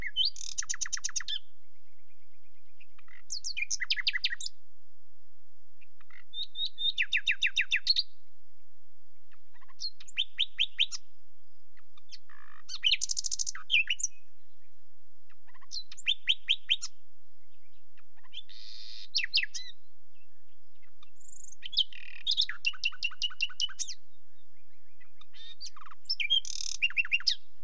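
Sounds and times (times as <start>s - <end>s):
common nightingale delivering varied song phrases: 0.0s - 4.7s, 5.8s - 27.6s.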